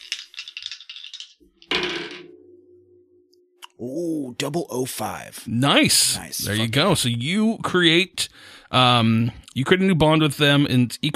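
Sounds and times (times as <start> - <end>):
giant dice rattling and tumbling across a hard surface: 0.0 - 2.2
speech: 3.8 - 11.1.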